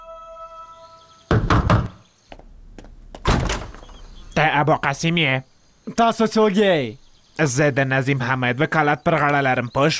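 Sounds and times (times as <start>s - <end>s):
knocking on a house door: 1.3s - 3.7s
speech: 4.4s - 9.9s.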